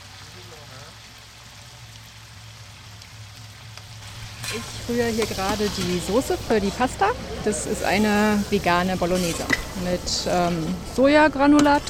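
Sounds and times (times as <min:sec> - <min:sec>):
30 kg of onions frying in a huge 250-litre pot: 0:03.7 - 0:11.8
speech: 0:04.5 - 0:11.8
faint murmur of voices: 0:05.2 - 0:11.0.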